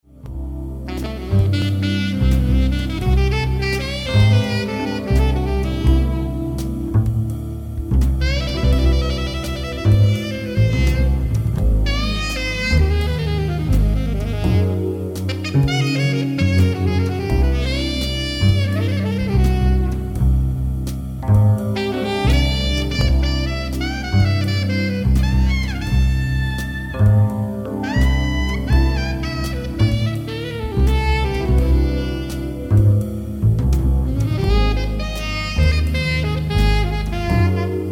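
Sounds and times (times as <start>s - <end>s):
metal music: 0.0s - 37.8s.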